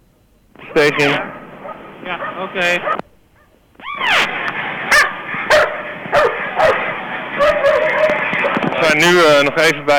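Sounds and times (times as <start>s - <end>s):
constant noise: 0.0s - 9.9s
dogs barking excitedly: 0.7s - 8.7s
speech: 0.8s - 1.4s, 2.0s - 3.0s, 8.9s - 9.9s
dog high yelping whine: 1.0s - 6.8s, 7.4s - 8.2s.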